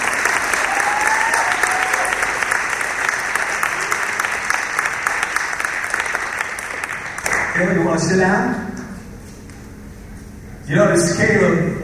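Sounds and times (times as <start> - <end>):
large crowd of schoolchildren applauding in a gym: 0.0 - 7.6
faint shouts and whoops: 0.6 - 2.4
speech: 7.6 - 8.6, 10.7 - 11.8.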